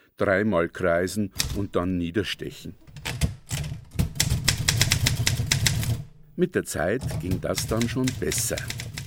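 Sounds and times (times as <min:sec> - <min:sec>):
speech: 0:00.2 - 0:02.8, 0:06.4 - 0:08.9
keys clacking on an Erika manual typewriter: 0:01.4 - 0:01.8, 0:02.8 - 0:06.1, 0:07.0 - 0:09.0.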